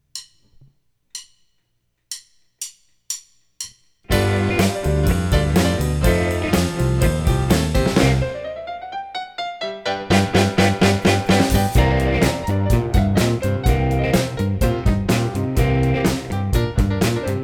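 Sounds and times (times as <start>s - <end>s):
funky blues music in C: 4.1s - 8.6s, 10.1s - 17.4s.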